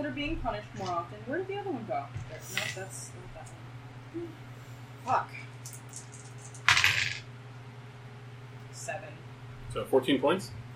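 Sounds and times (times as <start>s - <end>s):
speech: 0.0s - 5.5s, 8.8s - 10.6s
faint low hum: 0.0s - 10.7s
two dice clattering and rattling across a table: 5.6s - 7.2s.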